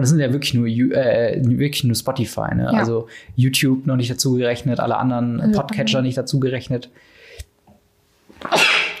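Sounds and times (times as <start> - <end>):
speech: 0.0 - 7.2, 8.4 - 8.8
sneeze: 8.4 - 8.9.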